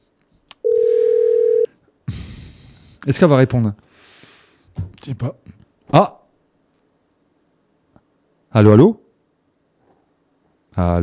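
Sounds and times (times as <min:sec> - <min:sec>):
telephone ringback tone while placing a call: 0:00.6 - 0:01.7
speech: 0:03.0 - 0:04.1, 0:05.0 - 0:06.2, 0:08.5 - 0:09.0, 0:10.8 - 0:11.0.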